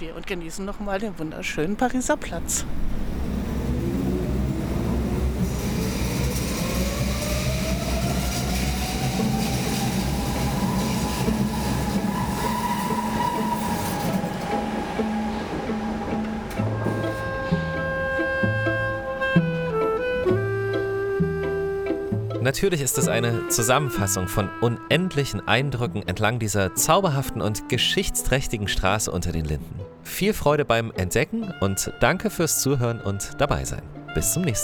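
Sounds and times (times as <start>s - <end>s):
speech: 0.0s - 3.0s, 22.5s - 34.6s
underground train wheels and carriage rumbling: 1.0s - 20.4s
underground train electric motor whine: 2.1s - 22.0s.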